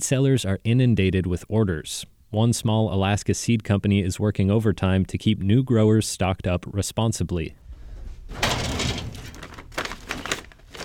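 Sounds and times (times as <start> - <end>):
speech: 0.0 - 7.6
metal filing drawer holding seed files sliding open: 8.3 - 9.4.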